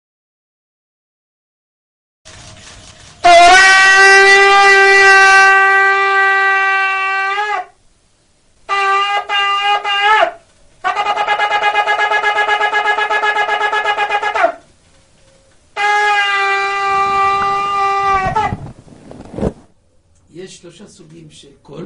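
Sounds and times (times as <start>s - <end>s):
shofar played by a rabbi: 3.2s - 7.8s, 8.7s - 14.7s, 15.8s - 18.7s.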